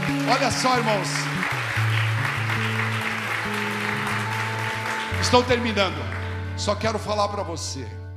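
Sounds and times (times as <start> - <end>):
crowd applauding in a large room: 0.0 - 7.8
speech: 0.3 - 1.4, 5.2 - 8.0.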